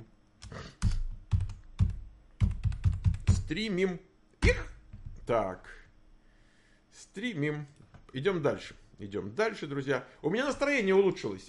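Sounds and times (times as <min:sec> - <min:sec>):
typing on a computer keyboard: 0:00.8 - 0:03.4
speech: 0:03.5 - 0:05.8, 0:07.0 - 0:11.4.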